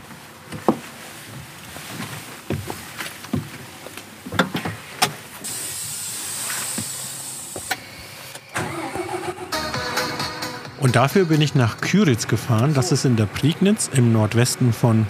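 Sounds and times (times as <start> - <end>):
clicks and clunks of someone climbing aboard a tractor: 0.0 - 5.4
loud hissing burst: 5.4 - 7.8
tractor engine cranking and starting in Küritz, Brandenburg, Germany: 5.4 - 15.0
speech: 10.8 - 15.0.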